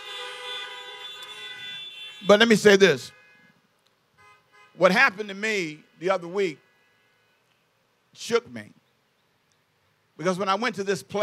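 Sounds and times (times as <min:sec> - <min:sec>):
several car horns honking at drive-in service: 0:00.0 - 0:07.5
speech: 0:02.2 - 0:03.2, 0:04.8 - 0:06.6, 0:08.2 - 0:08.8, 0:10.2 - 0:11.2.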